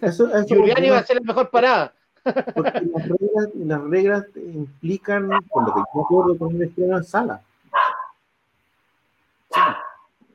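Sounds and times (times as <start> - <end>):
speech: 0.0 - 7.5
loose dog barking on the street: 7.7 - 8.2, 9.5 - 10.1.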